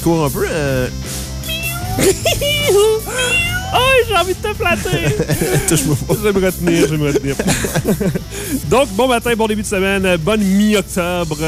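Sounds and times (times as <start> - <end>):
speech: 0.0 - 1.3, 2.0 - 11.4
steady humming background: 0.0 - 11.4
person imitating a cat meowing: 1.4 - 7.0
laughter: 1.9 - 8.8.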